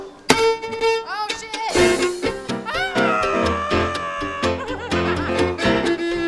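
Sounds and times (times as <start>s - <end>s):
string breaking: 0.2s - 1.2s
laughter: 2.6s - 6.2s.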